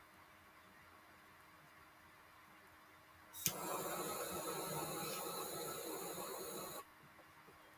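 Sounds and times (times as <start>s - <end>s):
torch lighter roaring with a forceful jet hiss: 3.4s - 6.9s.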